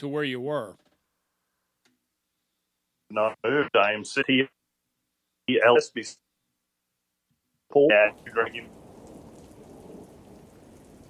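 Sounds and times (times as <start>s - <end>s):
speech: 0.0s - 0.9s, 3.1s - 4.6s, 5.5s - 6.2s, 7.7s - 8.8s
loud voice-like bursts: 7.8s - 8.7s
steady hissing rain from a storm: 7.8s - 11.0s
low rumbling thunder: 8.1s - 11.0s.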